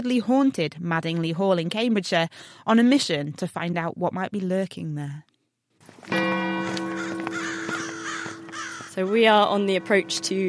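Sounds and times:
speech: 0.0 - 5.3, 6.0 - 6.8, 9.0 - 10.4
crows cawing outdoors at dusk: 6.6 - 10.3.

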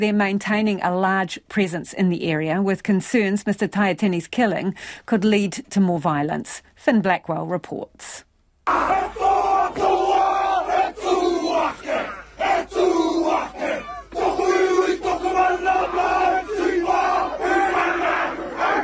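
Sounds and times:
speech: 0.0 - 10.2
crowd of gang members chanting and shouting a haka in unison: 8.7 - 18.8.

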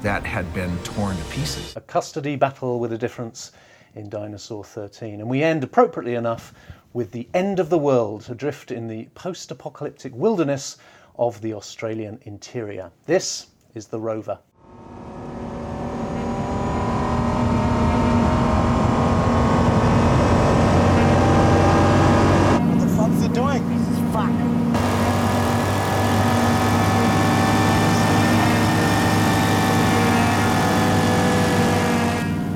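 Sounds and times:
car engines revving: 0.0 - 1.8, 14.6 - 32.5
speech: 0.0 - 14.5.

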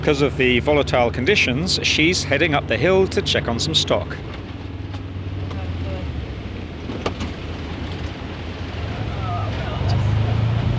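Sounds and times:
speech: 0.0 - 4.4
side-by-side utility vehicle engine droning uphill: 0.0 - 10.7.

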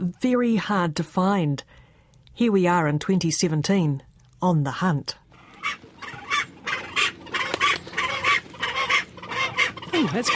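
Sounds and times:
speech: 0.0 - 1.8, 2.4 - 5.8, 10.0 - 10.3
Fiordland crested penguin calling from nest under rocks at Milford Sound: 5.3 - 10.3.

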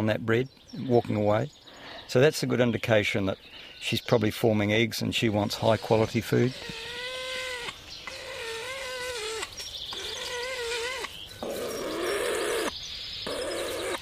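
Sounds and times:
speech: 0.0 - 7.0
male weka giving drawn-out nasal harmonic wails: 5.4 - 14.0.

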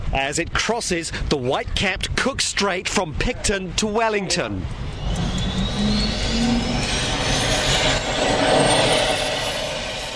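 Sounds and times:
speech: 0.1 - 5.2
helicopter turbine engines starting up on ship deck: 4.7 - 10.1.

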